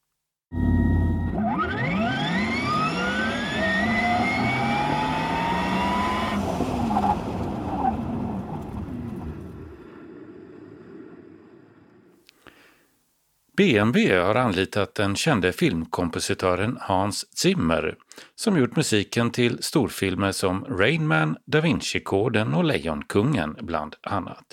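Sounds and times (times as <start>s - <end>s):
Porsche Taycan electric sports car accelerating hard: 0.5s - 12.1s
speech: 13.6s - 24.5s.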